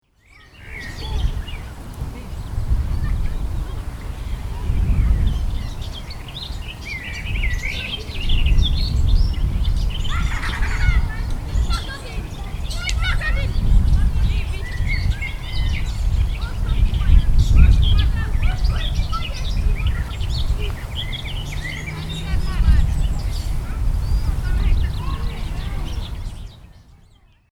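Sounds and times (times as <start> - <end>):
garden warbler singing: 0.0 - 27.5
laughter: 10.0 - 14.6, 21.5 - 26.0.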